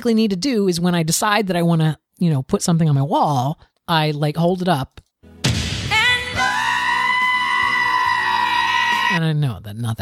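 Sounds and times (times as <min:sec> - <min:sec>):
speech: 0:00.0 - 0:05.0, 0:09.1 - 0:10.0
goat screaming: 0:06.4 - 0:09.2.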